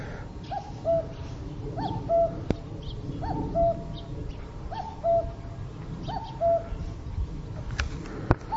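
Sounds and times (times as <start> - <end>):
low outdoor rumble: 0.0 - 8.5
common cuckoo calling: 0.4 - 6.9.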